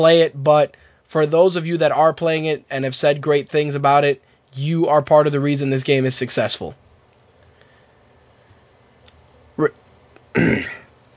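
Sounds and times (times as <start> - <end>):
speech: 0.0 - 6.8, 9.6 - 9.8
throat clearing: 10.3 - 10.9.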